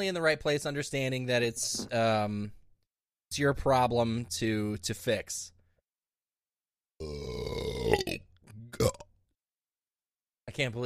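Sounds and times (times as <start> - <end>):
speech: 0.0 - 2.6, 3.3 - 5.6, 7.0 - 9.0, 10.6 - 10.8
short belch: 7.0 - 9.1
loud throaty burp: 7.0 - 9.2.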